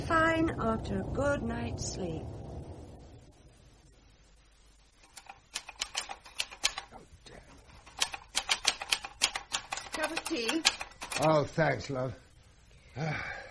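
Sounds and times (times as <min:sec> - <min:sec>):
speech: 0:00.4 - 0:02.4, 0:10.0 - 0:12.2, 0:13.0 - 0:13.4
keys clacking on a typewriter or keyboard: 0:05.0 - 0:06.9, 0:07.7 - 0:11.4.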